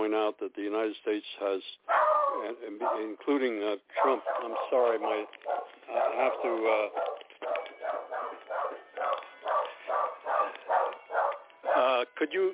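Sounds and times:
speech: 0.1 - 7.1, 11.8 - 12.5
dog barking over a narrow line: 1.9 - 3.2, 3.9 - 12.0.

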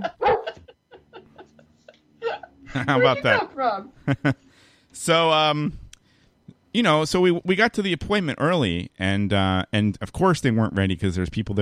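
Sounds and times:
dog yipping and whimpering: 0.0 - 0.6
laughter: 0.0 - 3.4, 4.0 - 4.4
dog barking: 0.1 - 0.6
speech: 2.8 - 5.8, 6.8 - 11.6.

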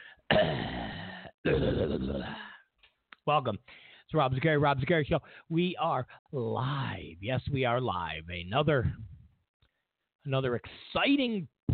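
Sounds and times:
person faking a cough with exaggerated throat clearing: 0.3 - 0.9
speech: 1.4 - 2.5, 3.2 - 9.1, 10.2 - 11.7.

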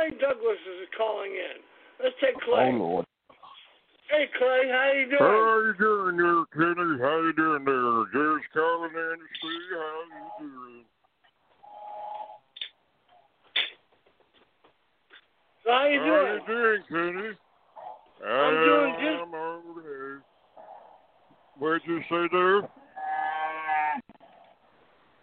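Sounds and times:
speech: 0.1 - 3.1, 4.1 - 11.0, 15.7 - 17.4, 18.2 - 20.3, 21.6 - 22.8
cows mooing: 11.6 - 12.5, 17.8 - 19.5, 20.6 - 21.1, 22.8 - 24.4.

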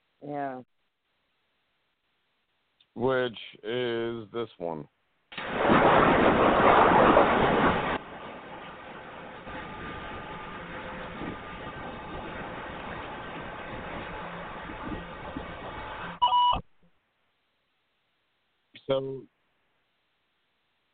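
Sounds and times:
speech: 0.2 - 0.8, 3.0 - 7.9, 18.9 - 19.3
rush of wind or surf-like noise: 5.6 - 16.2
recorder giving short electronic beeps: 16.1 - 16.6.

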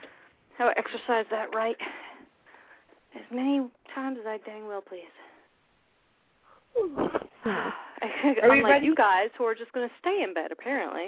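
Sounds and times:
speech: 0.6 - 2.0, 3.1 - 5.2, 6.8 - 11.0
person yawning: 6.7 - 7.8.

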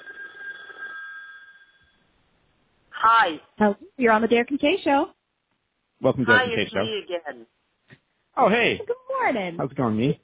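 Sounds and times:
telephone ringing with an incoming call: 0.0 - 2.0
speech: 3.0 - 5.2, 6.0 - 7.6, 8.4 - 10.2.

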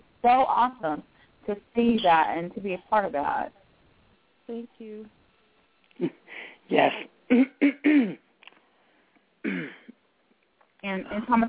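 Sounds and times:
speech: 0.2 - 3.6, 4.5 - 5.2, 6.0 - 8.2, 10.8 - 11.4
person clearing throat: 7.3 - 8.3, 9.4 - 10.0.

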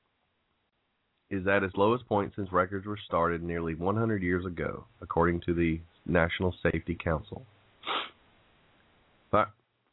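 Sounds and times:
speech: 1.3 - 8.0, 9.3 - 9.6
sneeze: 7.8 - 8.2.

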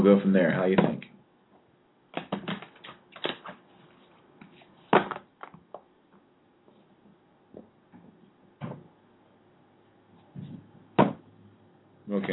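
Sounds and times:
speech: 0.0 - 1.1
deck of playing cards being shuffled: 2.2 - 5.2.

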